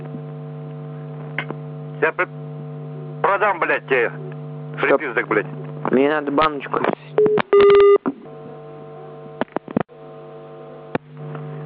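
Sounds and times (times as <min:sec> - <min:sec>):
steady electrical hum: 0:00.0 - 0:11.6
speech: 0:02.0 - 0:02.4, 0:03.2 - 0:07.8
telephone keypad touch-tone beeps as a number is dialed: 0:07.2 - 0:08.0.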